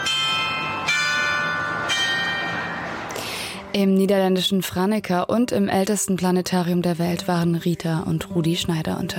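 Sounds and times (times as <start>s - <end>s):
town hall carillon bells playing a wedding march: 0.0s - 3.0s
speech: 3.7s - 9.1s.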